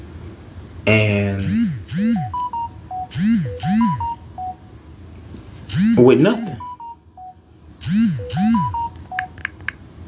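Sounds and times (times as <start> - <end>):
speech: 0.9 - 1.6, 6.1 - 6.6
phone text message notification tones: 1.9 - 4.6, 5.8 - 7.3, 8.0 - 9.4.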